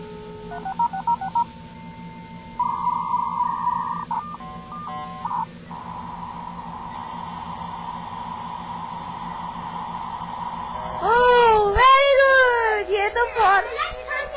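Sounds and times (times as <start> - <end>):
low steady hum: 0.0 - 14.3
telephone dialing tones dialing a number for dial-up internet connection: 0.5 - 1.5, 2.6 - 6.5.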